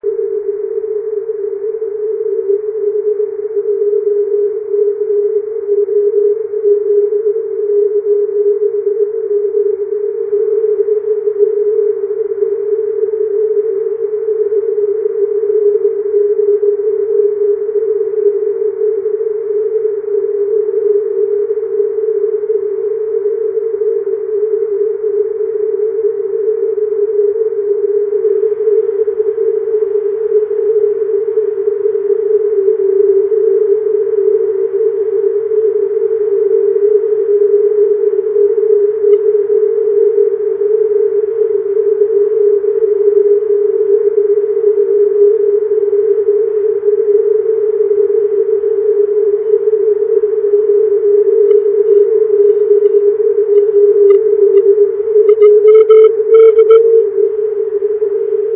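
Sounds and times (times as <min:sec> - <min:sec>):
6m EME signal with FFT filter: 0:00.0 - 0:58.5.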